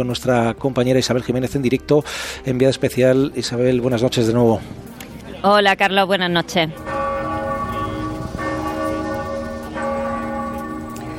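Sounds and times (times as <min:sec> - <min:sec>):
speech: 0:00.0 - 0:04.8, 0:05.4 - 0:06.9
church bells of a basilica ringing to open a rosary prayer: 0:06.7 - 0:11.1.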